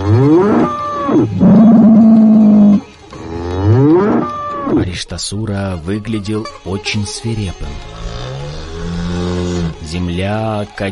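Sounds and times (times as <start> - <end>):
bull roaring: 0.0 - 4.8, 7.9 - 9.9
speech: 5.2 - 8.0, 9.9 - 10.9.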